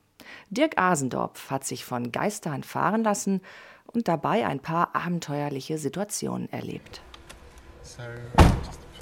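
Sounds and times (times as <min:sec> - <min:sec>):
speech: 0:00.5 - 0:07.1, 0:07.8 - 0:08.8
Honda Civic door shutting as someone gets in, in England: 0:07.0 - 0:09.0.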